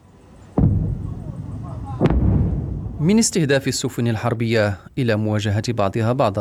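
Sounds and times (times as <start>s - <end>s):
constant low engine rumble: 0.0s - 4.9s
sharp loud gunshots from a naval drone boat: 0.6s - 3.8s
speech: 3.0s - 6.3s.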